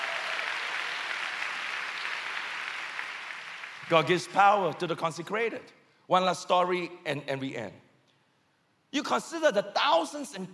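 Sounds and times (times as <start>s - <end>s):
large crowd clapping: 0.0s - 4.7s
speech: 3.9s - 7.8s, 8.9s - 10.5s.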